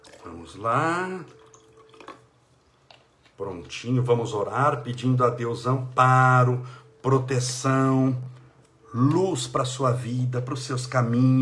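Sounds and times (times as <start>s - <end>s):
water poured into a glass: 0.0s - 2.4s
faint steady hum: 0.0s - 11.4s
speech: 0.2s - 1.4s, 3.4s - 8.3s, 8.9s - 11.4s.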